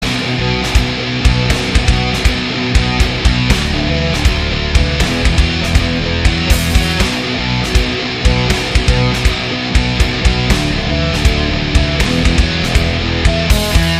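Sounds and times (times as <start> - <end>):
progressive metal djent guitar tone test: 0.0 - 13.9.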